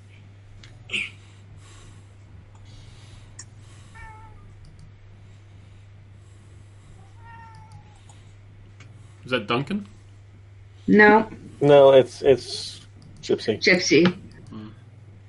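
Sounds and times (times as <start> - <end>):
steady low electrical hum: 0.0 - 15.2
speech: 0.9 - 1.1, 9.3 - 10.0, 10.9 - 14.7
female cat meowing softly, wanting to play: 7.2 - 8.0.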